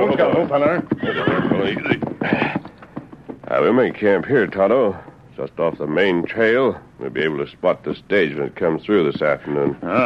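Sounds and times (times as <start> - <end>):
horses whinnying as riders pull them to a halt in Red Rock Canyon: 0.0 - 3.2
clopping horse hooves settling to a stop: 0.0 - 10.0
speech: 0.1 - 2.6, 3.5 - 10.0.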